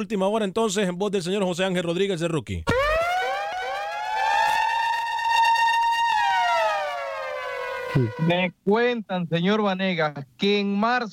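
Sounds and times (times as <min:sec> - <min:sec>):
speech: 0:00.0 - 0:02.8, 0:08.0 - 0:11.1
World War II air raid siren wailing: 0:02.7 - 0:08.4.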